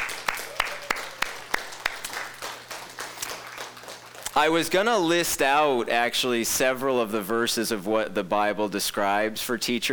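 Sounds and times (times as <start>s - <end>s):
audience applauding Sunday school teachers: 0.0s - 4.8s
speech: 4.4s - 9.9s.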